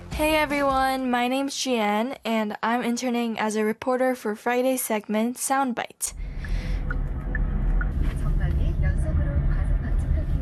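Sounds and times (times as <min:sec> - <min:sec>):
speech: 0:00.2 - 0:06.2
road and engine rumble inside a moving car: 0:06.2 - 0:10.3.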